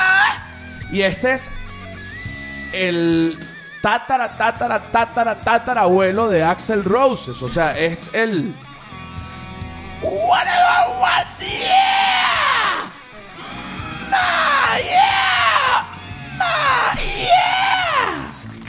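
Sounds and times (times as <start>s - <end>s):
speech: 0.9s - 1.6s, 2.7s - 8.7s, 10.0s - 11.9s
monkey yelling loudly and shrilly: 10.0s - 18.4s.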